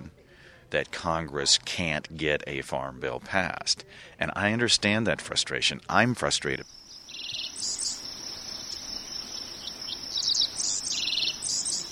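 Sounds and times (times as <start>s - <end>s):
speech: 0.7s - 7.7s
dickcissels, field sparrows and common yellowthroats singing over a farm: 6.5s - 11.8s
steady high insect drone: 6.7s - 11.8s.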